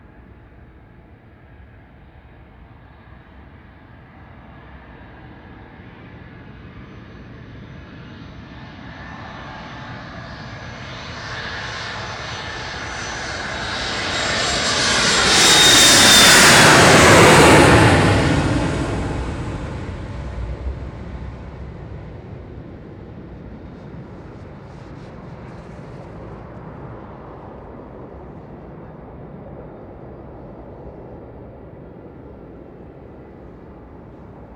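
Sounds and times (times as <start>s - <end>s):
airport background noise: 14.7s - 34.5s.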